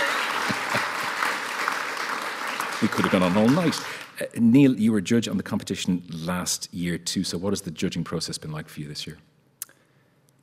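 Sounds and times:
audience applause at a literary award event: 0.0s - 4.2s
louder individual claps: 0.0s - 4.2s
speech: 2.8s - 9.3s.

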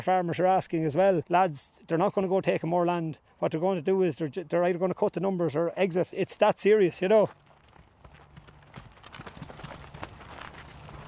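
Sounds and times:
speech: 0.0s - 7.4s
hooves of dairy cows clopping on hard ground on a farm: 6.2s - 11.0s.

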